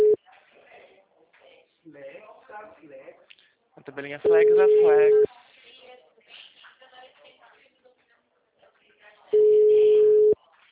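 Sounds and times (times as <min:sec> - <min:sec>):
speech: 0:02.8 - 0:05.4
low-pitched telephone ringback tone of an unanswered call: 0:04.3 - 0:05.3, 0:09.4 - 0:10.4.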